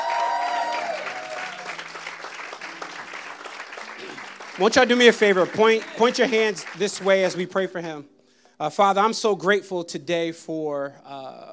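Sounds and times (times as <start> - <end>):
church congregation applauding: 0.0 - 7.9
speech: 4.6 - 11.5.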